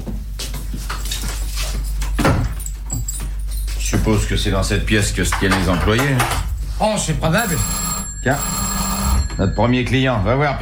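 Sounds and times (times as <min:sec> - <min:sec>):
low steady hum: 0:00.0 - 0:10.6
speech: 0:00.8 - 0:01.0, 0:04.0 - 0:08.8, 0:09.4 - 0:10.6
metallic keys jingling: 0:00.9 - 0:04.1.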